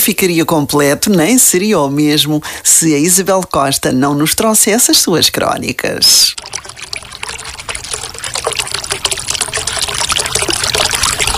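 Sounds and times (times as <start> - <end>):
speech: 0.0 - 6.8
water running from an opened tap: 6.4 - 11.3.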